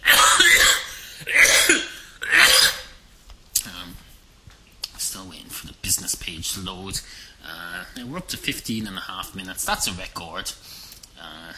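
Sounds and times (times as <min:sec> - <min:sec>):
loud rasping coughs: 0:00.0 - 0:03.0
speech: 0:06.4 - 0:11.4.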